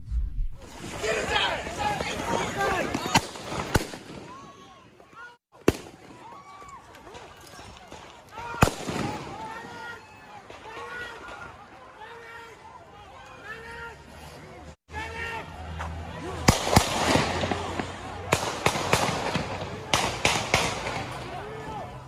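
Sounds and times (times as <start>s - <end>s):
gunshots on a street in Kenosha Wisconsin: 0.6s - 4.6s, 5.6s - 6.4s, 7.1s - 9.8s, 16.4s - 21.7s
restless crowd shouting on a street: 0.7s - 22.0s.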